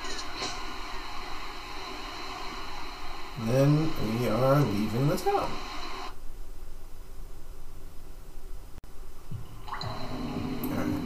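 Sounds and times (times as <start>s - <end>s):
hissing ambient background in a cave: 0.0s - 11.0s
speech: 3.4s - 5.7s
water dripping in a cave: 9.3s - 11.0s.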